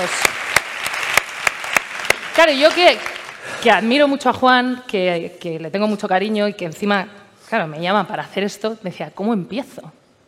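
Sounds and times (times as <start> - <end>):
speech: 0.0 - 0.4, 2.4 - 10.0
sharp evenly spaced hand claps: 0.0 - 3.4
audience applause: 0.0 - 3.7.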